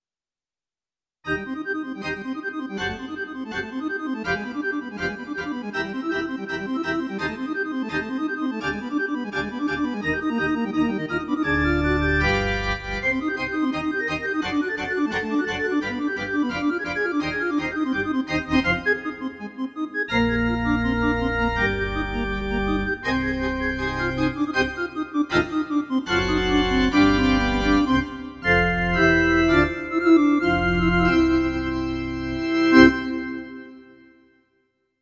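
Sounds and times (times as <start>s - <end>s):
church organ sound on a Roland FR-8X V-Accordion: 1.3s - 34.4s.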